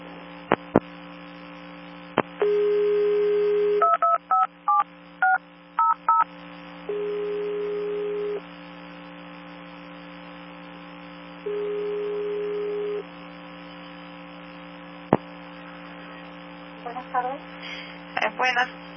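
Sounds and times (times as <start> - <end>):
low electrical hum: 0.0 - 18.9
steady telephone dial tone: 2.4 - 6.2, 6.8 - 8.4, 11.4 - 13.1
speech: 18.5 - 18.8.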